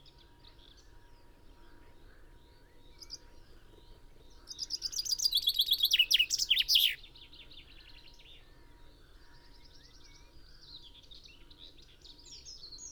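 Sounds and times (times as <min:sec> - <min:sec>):
common chaffinch (Fringilla coelebs) song: 0:04.7 - 0:07.0.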